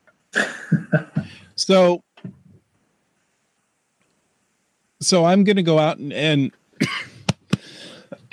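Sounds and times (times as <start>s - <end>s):
loud fit of harsh coughing: 0.4s - 1.5s, 6.8s - 7.3s, 8.1s - 8.3s
speech: 1.7s - 2.1s, 5.0s - 7.0s.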